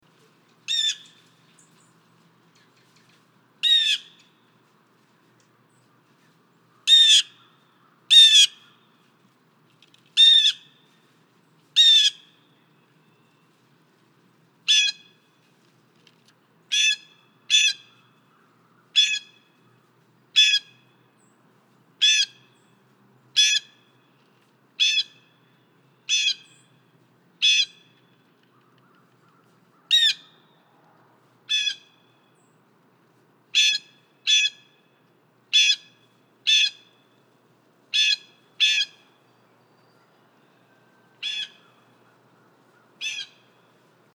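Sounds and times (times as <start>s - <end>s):
Blue Jay Cyanocitta cristata calling: 0.7s - 1.8s, 3.6s - 4.4s, 6.7s - 8.9s, 10.2s - 10.9s, 11.8s - 12.6s, 14.7s - 15.2s, 16.7s - 19.8s, 20.4s - 20.8s, 22.0s - 22.7s, 23.4s - 24.0s, 24.8s - 26.8s, 27.4s - 30.6s, 31.5s - 32.5s, 33.5s - 34.9s, 35.5s - 37.2s, 37.9s - 43.7s.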